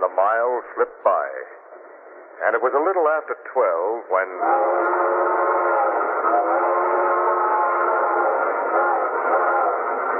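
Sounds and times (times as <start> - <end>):
speech: 0.2 - 5.4
train whistle blowing: 4.4 - 10.1.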